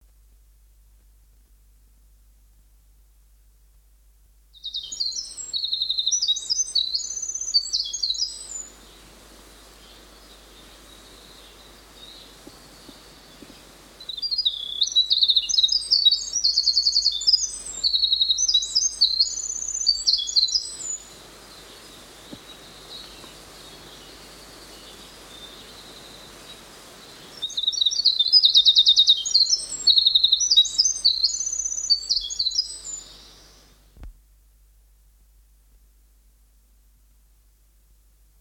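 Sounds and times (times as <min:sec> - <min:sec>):
winter wren singing: 0:04.6 - 0:08.8, 0:09.9 - 0:26.1, 0:27.3 - 0:33.8.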